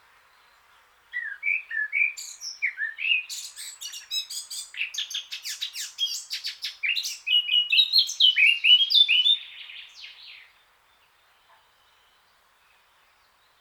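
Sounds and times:
Eurasian blackcap Sylvia atricapilla scratchy warble and fluty whistled song: 1.1 - 10.4.

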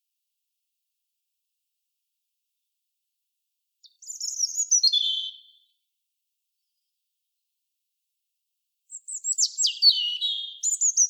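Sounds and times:
European robin Erithacus rubecula singing: 3.8 - 5.7, 8.9 - 11.0.

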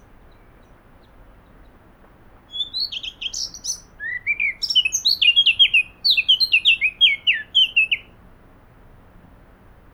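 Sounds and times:
Eurasian blackcap Sylvia atricapilla singing: 2.5 - 8.1.

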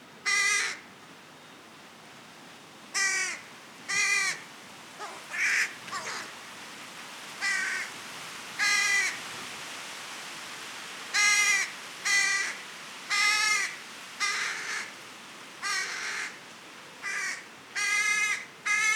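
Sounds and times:
carrion crow Corvus corone uttering hoarse grating caws: 0.3 - 0.8, 3.0 - 4.4, 5.0 - 6.3, 7.4 - 7.9, 11.2 - 14.9, 15.6 - 16.4, 17.0 - 18.9.

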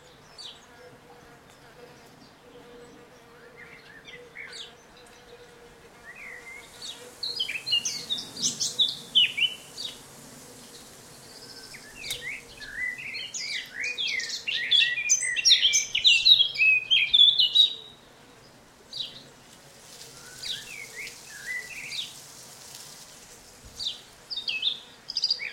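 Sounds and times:
Eurasian blackcap Sylvia atricapilla singing: 6.0 - 18.0, 20.1 - 22.2.

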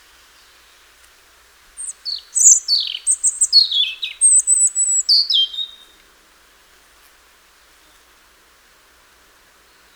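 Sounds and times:
European robin song: 1.8 - 6.0.

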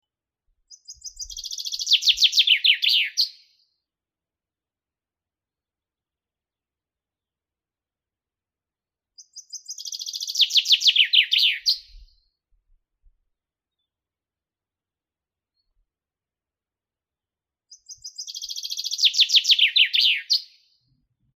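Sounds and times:
common chaffinch Fringilla coelebs singing: 0.7 - 3.5, 9.2 - 12.2, 17.7 - 20.6.

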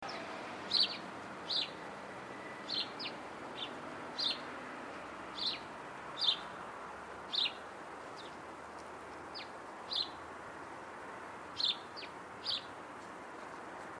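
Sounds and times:
house sparrow Passer domesticus chirps: 0.0 - 1.9, 2.5 - 4.5, 5.4 - 6.5, 7.3 - 7.6, 8.2 - 10.2, 11.6 - 12.8
steady background hiss: 0.0 - 13.9.

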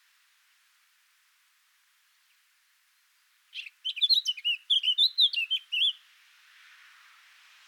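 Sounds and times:
Eurasian blackcap Sylvia atricapilla warbling song: 3.5 - 6.0.

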